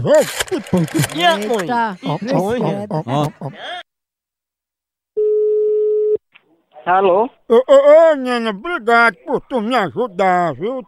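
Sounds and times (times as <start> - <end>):
laughter: 0.0 - 3.8, 8.9 - 10.8
speech: 0.0 - 3.8, 6.8 - 10.8
outgoing phone call ringing tone: 5.2 - 6.2.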